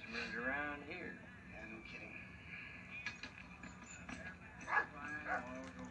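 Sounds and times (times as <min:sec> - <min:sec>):
low hum: 0:00.0 - 0:05.8
speech: 0:00.4 - 0:02.4
dog barking: 0:04.7 - 0:05.6.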